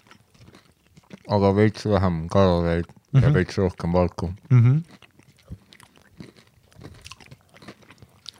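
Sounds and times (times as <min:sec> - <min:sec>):
chewing a cookies and cream protein bar: 0:00.0 - 0:01.8, 0:02.8 - 0:08.3
speech: 0:01.3 - 0:05.0
moist mouth sounds: 0:04.2 - 0:08.3.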